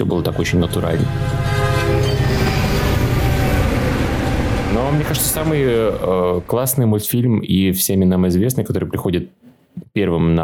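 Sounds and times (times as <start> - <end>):
speech: 0.0 - 1.7, 4.8 - 9.4, 10.0 - 10.4
train rumbling with low roar: 0.0 - 7.3.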